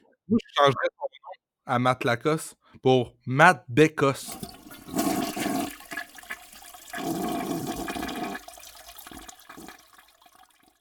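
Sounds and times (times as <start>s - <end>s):
speech: 0.3s - 1.1s, 1.7s - 5.2s
toilet flushing: 4.3s - 10.7s
toilet refill trickle: 4.3s - 10.7s.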